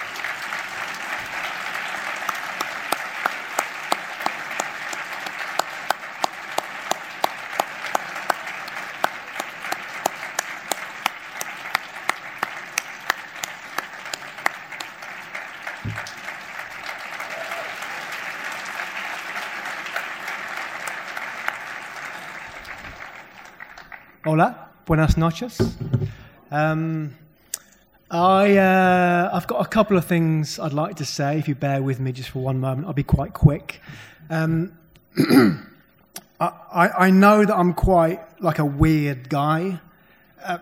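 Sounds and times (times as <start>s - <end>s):
large audience applauding for award winner: 0.0s - 24.3s
speech: 24.4s - 27.2s, 28.1s - 35.7s, 36.4s - 39.8s, 40.4s - 40.6s.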